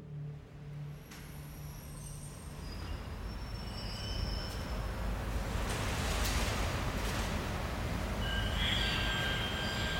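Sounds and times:
commuter train rolling along the rails in central Stockholm: 0.3 - 9.9
faint metallic squeals and whines: 1.0 - 9.9.

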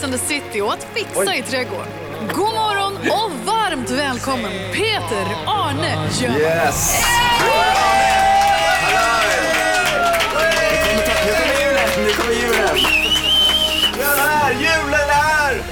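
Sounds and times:
speech: 0.0 - 8.2
crowd cheering and shouting: 4.8 - 14.8.

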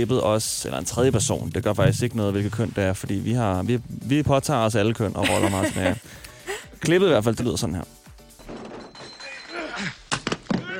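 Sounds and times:
speech: 0.0 - 8.0
laughter: 5.2 - 6.7
two men grunting in a staged fistfight: 9.5 - 10.7.

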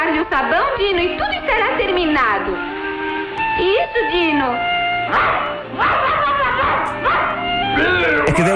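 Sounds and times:
speech: 0.2 - 2.8, 3.6 - 8.5
cartoon dinosaur barking and yelping like an excited dog: 5.1 - 7.4.

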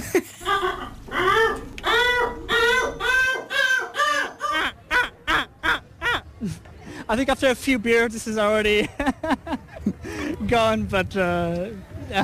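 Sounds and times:
man from Portugal imitating harsh wailing seagull calls: 0.4 - 6.2
speech: 7.1 - 9.4, 10.5 - 12.2.

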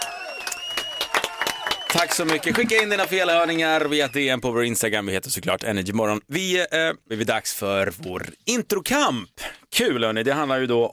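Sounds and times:
several pairs of hands clapping irregularly: 0.0 - 4.3
speech: 1.9 - 10.9.

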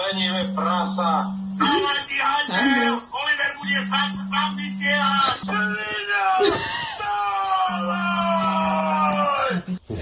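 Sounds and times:
low steady hum: 0.0 - 10.0
speech: 0.1 - 6.8
person screaming and yelling next to a sleeping man: 5.8 - 9.7.

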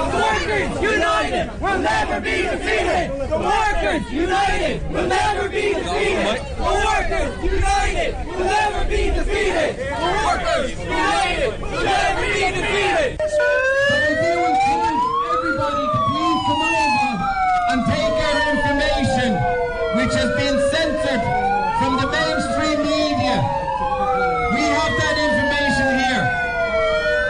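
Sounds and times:
rough din of a crowd's voices: 0.0 - 27.2
speech: 0.5 - 14.6
loud siren wailing: 10.0 - 27.2.

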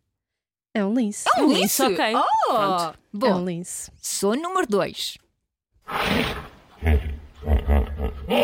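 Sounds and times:
speech: 0.8 - 5.2
hippopotamus deep rumbling grunts and wheezing bellows: 5.9 - 8.4.

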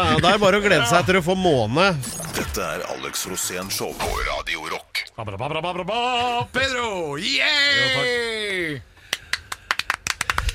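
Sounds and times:
speech: 0.0 - 8.9
small group of guests clapping: 9.1 - 10.5.

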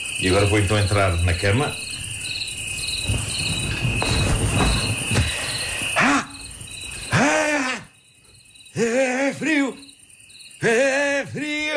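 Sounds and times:
nighttime countryside crickets chirping: 0.0 - 11.7
speech: 0.2 - 1.8
soft thumps: 2.1 - 5.9.

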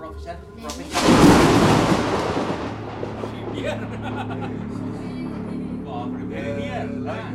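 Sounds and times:
heavy rain: 0.7 - 5.0
loud crack of thunder as lightning strikes a clay and stick hut: 0.7 - 5.8
laughter: 3.2 - 7.3.

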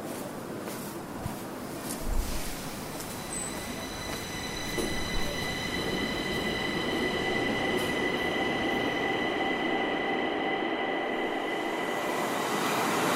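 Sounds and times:
subway train rumbling along the track: 0.0 - 13.1
subway train clunks: 2.9 - 13.1.

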